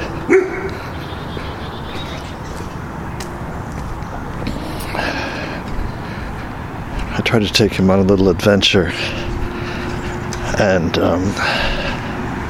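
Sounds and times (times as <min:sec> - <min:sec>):
rumbling noise: 0:00.0 - 0:12.4
dog barking: 0:00.3 - 0:00.9
speech: 0:07.3 - 0:09.3, 0:10.6 - 0:11.8.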